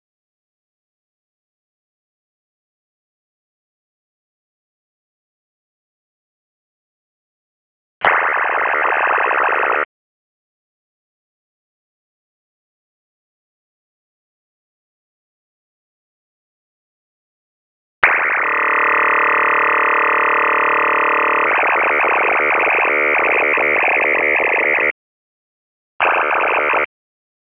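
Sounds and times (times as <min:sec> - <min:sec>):
300 baud 8-tone MFSK burst mode data signal: 0:08.1 - 0:09.9, 0:18.1 - 0:24.9, 0:26.0 - 0:26.9.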